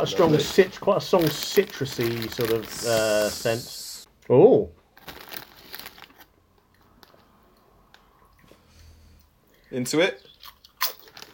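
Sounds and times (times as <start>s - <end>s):
peri-peri chicken flavour crisp packet being pulled open: 0.0s - 3.9s, 5.0s - 6.3s, 10.8s - 11.3s
speech: 0.0s - 4.8s, 9.7s - 10.3s.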